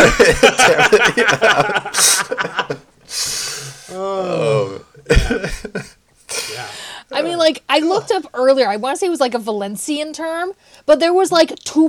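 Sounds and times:
speech: 0:00.0 - 0:02.2, 0:07.5 - 0:11.8
wheezy laugh-like breath: 0:00.0 - 0:04.0, 0:05.1 - 0:07.0
person coughing after hard laughter: 0:00.0 - 0:06.9.

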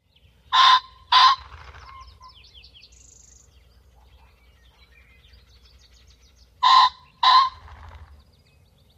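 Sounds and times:
ring-necked pheasant harsh double-note calls: 0:00.0 - 0:08.7
faint birdsong: 0:00.0 - 0:08.9
low rumble: 0:00.0 - 0:08.9.

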